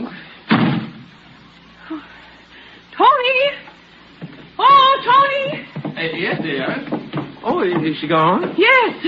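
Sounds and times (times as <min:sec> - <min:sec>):
door slamming shut: 0:00.5 - 0:01.0
faint knock: 0:04.2 - 0:08.7
speech: 0:07.6 - 0:09.0.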